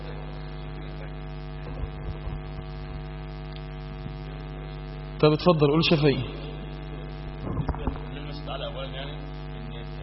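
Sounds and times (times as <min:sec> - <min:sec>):
electric fan running with steady electric hum: 0:00.0 - 0:10.0
speech: 0:05.2 - 0:06.4.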